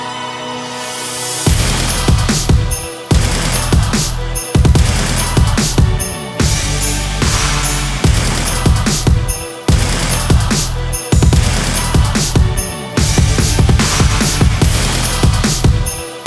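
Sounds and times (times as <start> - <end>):
German rap drum kit: 1.5 - 16.2.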